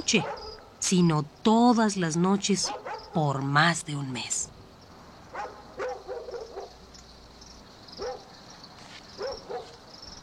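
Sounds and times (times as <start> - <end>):
night insects buzzing: 0.0 - 10.2
dogs barking at night: 0.1 - 0.8, 2.6 - 3.2, 5.3 - 6.8, 8.0 - 8.4, 9.2 - 9.8
speech: 0.1 - 4.4.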